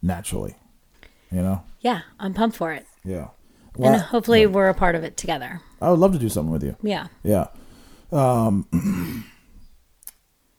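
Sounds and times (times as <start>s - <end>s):
speech: 0.0s - 0.6s, 1.3s - 9.3s
throat clearing: 8.4s - 9.4s.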